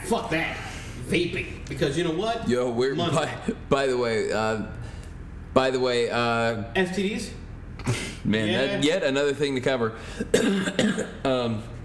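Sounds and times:
speech: 0.1 - 4.8, 5.5 - 11.7
person coughing: 10.2 - 11.3.

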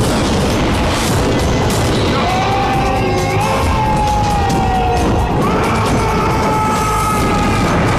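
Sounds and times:
heavy cannon fire from galleys: 0.0 - 7.9
high wailing whistling tones: 1.8 - 7.9.

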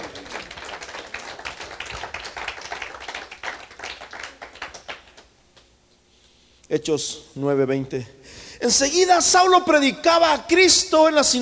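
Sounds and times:
audience clapping: 0.0 - 5.3
speech: 6.7 - 11.4.

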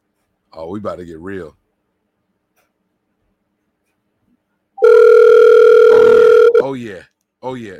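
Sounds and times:
speech: 0.5 - 1.6, 6.6 - 7.7
loud steady telephone dial tone: 4.8 - 6.6.

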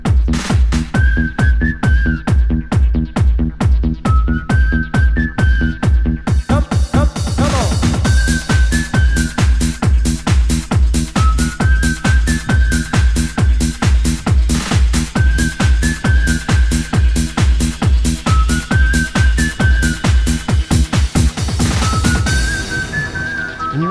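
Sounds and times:
upbeat dance song with four-on-the-floor beat and whistled melody: 0.0 - 23.9.

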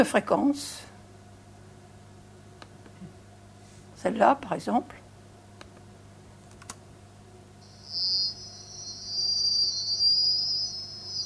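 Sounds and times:
speech: 0.0 - 0.9, 4.0 - 5.0
thin high-pitched sizzling crackle in the treble frequency range: 7.6 - 11.2.

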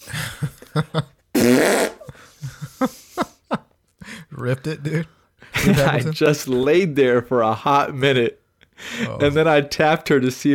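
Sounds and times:
laughter: 0.0 - 1.2, 2.0 - 6.2
speech: 0.8 - 1.8, 4.5 - 10.5
loud raspy fart from a person with an upset stomach: 1.3 - 2.1.

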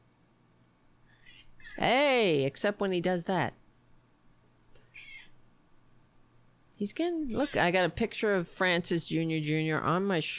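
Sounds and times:
low steady hum: 0.0 - 10.3
speech: 1.8 - 3.6, 6.8 - 10.3
cat meowing: 4.9 - 5.3.

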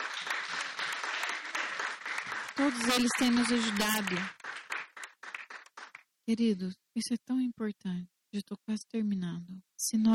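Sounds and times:
audience applauding: 0.0 - 6.1
speech: 2.6 - 4.4, 6.3 - 10.1.

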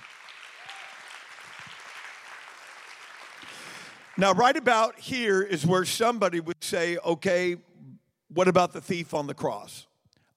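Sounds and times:
crowd clapping: 0.0 - 5.0
speech: 4.2 - 7.7, 8.3 - 9.9.

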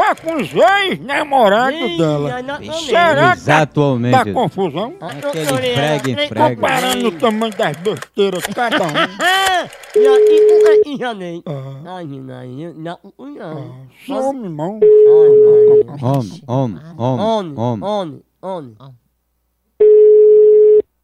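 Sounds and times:
telephone ring tones for a call: 0.0 - 3.4, 5.0 - 8.2, 8.8 - 10.9, 14.8 - 15.9, 19.8 - 20.9
laughter: 0.0 - 10.5
people talking loudly: 0.1 - 8.1
speech: 0.2 - 19.0.

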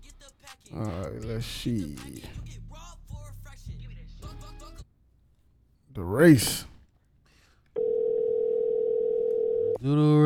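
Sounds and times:
speech: 0.7 - 2.6, 6.0 - 6.7
phone ringing tone during outgoing call: 7.8 - 9.8.

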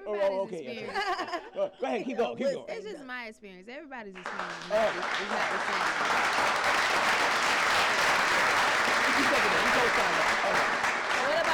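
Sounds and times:
laughter: 0.0 - 2.1, 8.8 - 11.5
speech: 0.1 - 7.3, 9.8 - 10.7
dense sustained applause from many hands: 4.2 - 11.5.

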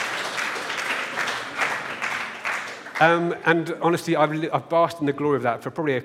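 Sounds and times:
round of applause from a small crowd: 0.0 - 3.6
speech: 3.0 - 6.0.

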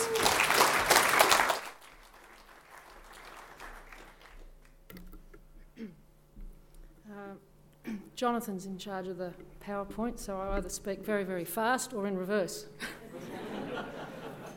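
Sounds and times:
audience clapping: 0.0 - 4.8
speech: 8.2 - 13.0
laughter: 12.8 - 14.5.

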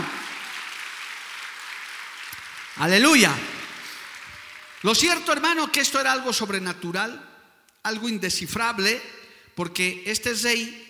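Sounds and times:
audience applauding: 0.0 - 5.6
speech: 2.8 - 3.5, 4.8 - 10.8.

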